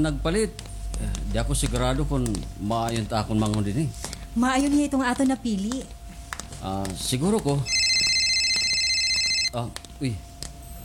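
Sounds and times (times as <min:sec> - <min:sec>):
speech: 0:00.0 - 0:06.0, 0:06.6 - 0:07.8, 0:09.5 - 0:10.3
cellphone ringing for an incoming call: 0:07.6 - 0:09.7.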